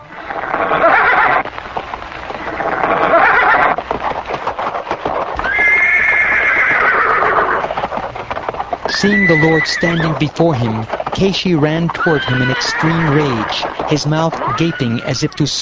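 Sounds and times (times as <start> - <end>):
horse neighing: 0.0 - 1.4, 2.4 - 3.8, 5.4 - 7.8, 8.9 - 10.9, 11.7 - 15.4
horse hooves galloping: 0.0 - 15.5
speech: 9.0 - 15.5.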